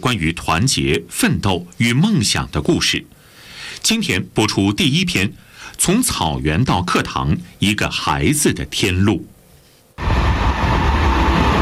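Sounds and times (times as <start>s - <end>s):
speech: 0.0s - 3.2s, 3.8s - 9.3s
passenger train from Shanghai pulling into the Lhasa terminal: 10.0s - 11.6s.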